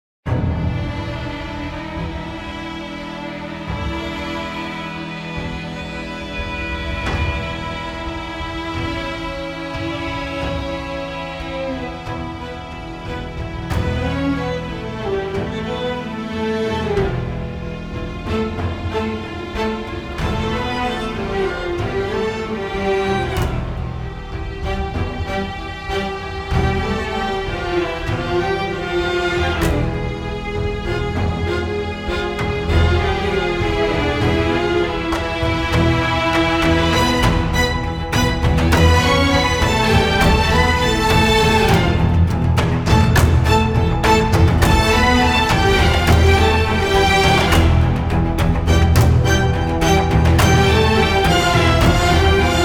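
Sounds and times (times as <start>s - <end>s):
string instruments playing: 0.3s - 52.6s.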